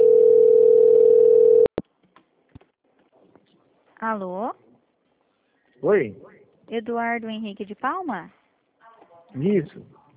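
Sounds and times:
telephone line tone during call transfer: 0.0 - 1.7
speech: 4.1 - 4.6, 5.8 - 8.4, 9.3 - 10.0.

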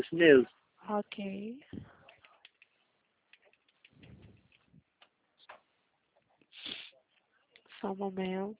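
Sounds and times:
speech: 0.0 - 1.9, 7.8 - 8.5
typing on a computer keyboard by a call agent during a phone call: 2.2 - 4.7.

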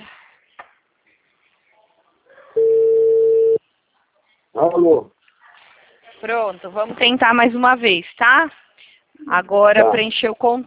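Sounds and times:
faint noise: 0.0 - 10.6
telephone ringback tone on the line during a phone call: 2.6 - 3.6
speech: 4.6 - 5.1, 6.2 - 8.6, 9.2 - 10.6.

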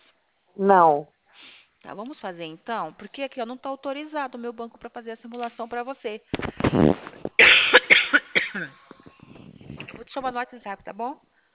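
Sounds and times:
speech: 0.6 - 1.1, 1.8 - 7.1, 8.6 - 8.8, 10.1 - 11.3
person coughing: 7.4 - 9.3.

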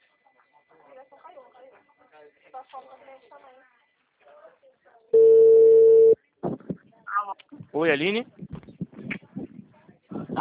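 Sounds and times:
steady telephone tone after a dropped call: 5.2 - 6.2
speech: 7.7 - 8.4.

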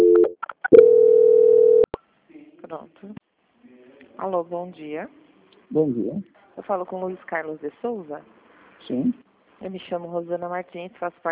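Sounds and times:
telephone tone during a call transfer on a bank customer call line: 0.0 - 1.9
speech: 3.0 - 3.2, 4.2 - 11.3.

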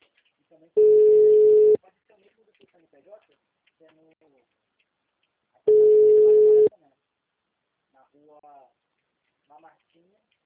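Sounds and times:
speech: 0.6 - 1.1
telephone busy signal after a dropped call: 0.8 - 1.8, 5.7 - 6.7.

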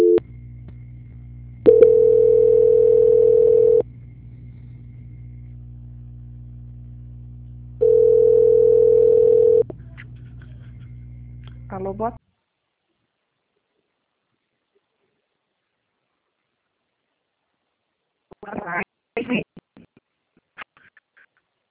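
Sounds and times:
telephone tones while a call is being transferred: 0.0 - 0.2, 1.7 - 3.8, 7.8 - 9.6
low electrical hum: 0.0 - 20.4
speech: 12.0 - 12.2, 19.2 - 19.4.

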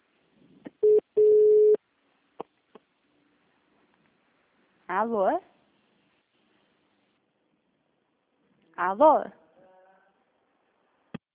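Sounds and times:
phone call breaking up with dial tones: 0.8 - 1.8
speech: 5.0 - 5.5, 8.8 - 9.4.

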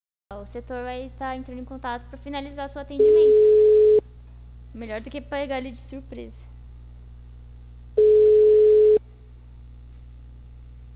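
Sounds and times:
faint low hum: 0.3 - 10.9
speech: 0.5 - 3.6, 4.7 - 6.5
telephone busy-line tone with all lines engaged: 3.0 - 4.0, 8.0 - 9.0.

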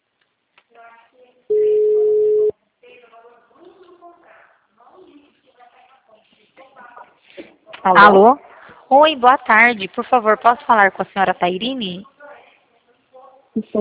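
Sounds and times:
telephone ringback tone while a call is being placed: 1.5 - 2.5
speech: 7.8 - 12.1, 13.6 - 13.8.

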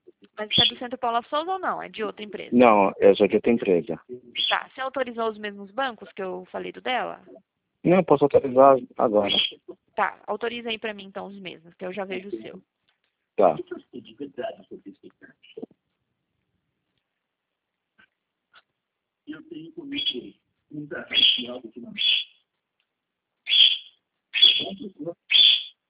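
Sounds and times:
small pet bird chirping, possibly cockatiel: 0.4 - 0.8, 4.4 - 4.7, 9.2 - 9.7, 21.1 - 22.4, 23.5 - 25.8
voice murmuring: 0.4 - 0.9, 2.5 - 4.4, 7.3 - 9.8, 11.8 - 12.6, 13.4 - 15.7, 19.3 - 22.0, 24.6 - 25.2
speech: 0.4 - 12.8, 13.4 - 15.0, 19.4 - 22.2, 24.6 - 25.6.

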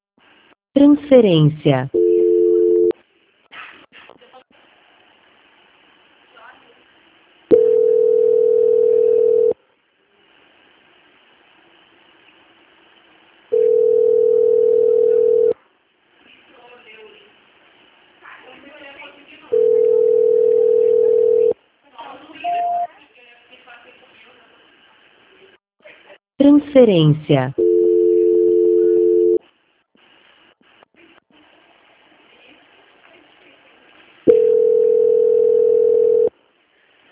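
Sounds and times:
speech: 0.8 - 2.0, 26.8 - 27.6
telephone line tone while calling a busy number: 2.0 - 2.9, 7.5 - 9.6, 13.5 - 15.5, 19.5 - 21.6, 27.6 - 29.4, 34.3 - 36.3
short beeps: 22.5 - 22.9.

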